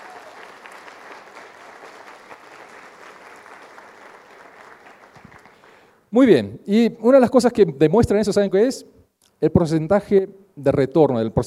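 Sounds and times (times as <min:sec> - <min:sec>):
room full of people applauding: 0:00.0 - 0:05.9
speech: 0:06.1 - 0:11.4.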